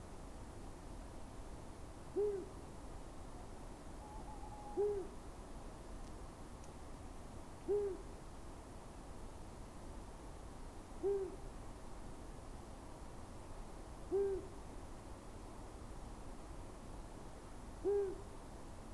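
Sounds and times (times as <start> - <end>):
steady background hiss: 0.0 - 18.9
male Long-eared Owl hooting at edge of Scots pine wood: 2.2 - 2.6, 4.0 - 5.2, 7.7 - 8.1, 11.0 - 11.4, 14.1 - 14.6, 17.8 - 18.3.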